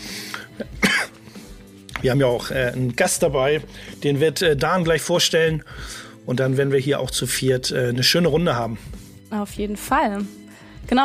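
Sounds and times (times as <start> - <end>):
single short cough: 0.3 - 1.2
speech: 0.6 - 0.8, 2.0 - 11.0.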